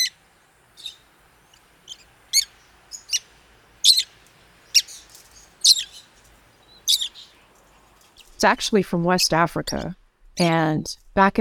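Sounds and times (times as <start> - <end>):
rosy-faced lovebirds squawking in Arizona: 0.0 - 0.2, 0.8 - 1.0, 1.8 - 7.4
speech: 8.4 - 11.3.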